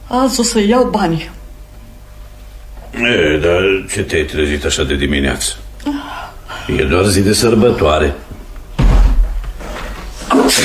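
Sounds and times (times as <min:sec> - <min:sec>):
speech: 0:00.1 - 0:01.4, 0:03.0 - 0:08.3
heavy thud at the front entrance door: 0:08.8 - 0:09.6.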